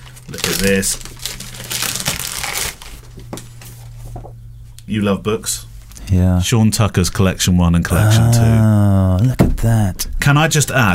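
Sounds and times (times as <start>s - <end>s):
packaging crinkling and rustling: 0.0s - 4.2s
low steady hum: 0.0s - 10.9s
speech: 0.3s - 1.2s, 4.9s - 10.9s.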